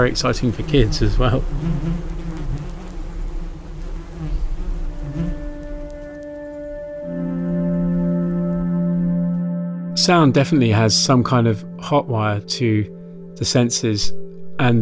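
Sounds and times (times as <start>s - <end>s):
speech: 0.0s - 2.2s, 10.1s - 14.8s
bee buzzing loudly right up against a microphone: 0.0s - 9.3s.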